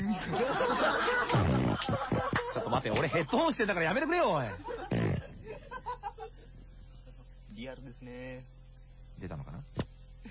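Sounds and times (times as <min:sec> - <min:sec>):
laughter: 0:00.0 - 0:07.3
speech: 0:02.7 - 0:04.7, 0:07.6 - 0:08.6, 0:09.2 - 0:09.8
voice imitating a gas burner flame whooshing roar: 0:04.9 - 0:05.4.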